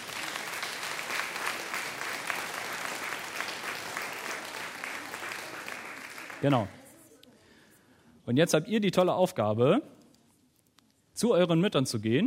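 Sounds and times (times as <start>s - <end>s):
audience clapping for children: 0.0s - 6.9s
speech: 6.4s - 6.8s, 8.3s - 10.0s, 11.2s - 12.2s.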